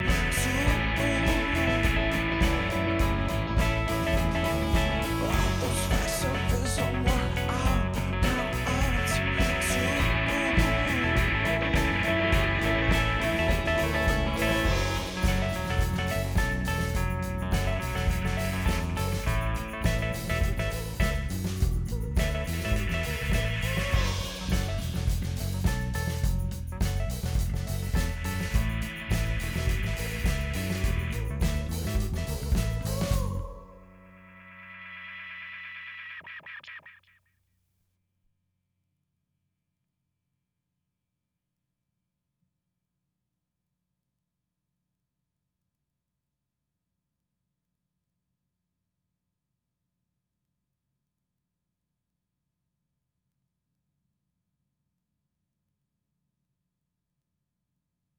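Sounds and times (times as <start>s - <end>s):
drums stem: 0.0s - 34.0s.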